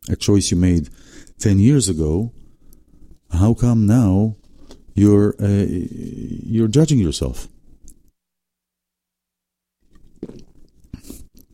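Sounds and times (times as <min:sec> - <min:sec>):
speech: 0:00.1 - 0:02.4, 0:03.3 - 0:04.4, 0:05.0 - 0:07.6
person gulping water: 0:09.8 - 0:11.5.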